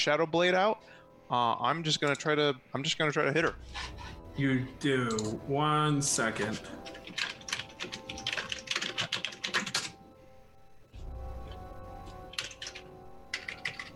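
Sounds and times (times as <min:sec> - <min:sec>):
speech: 0:00.0 - 0:07.3
typing on a computer keyboard: 0:06.5 - 0:10.0, 0:12.1 - 0:13.9.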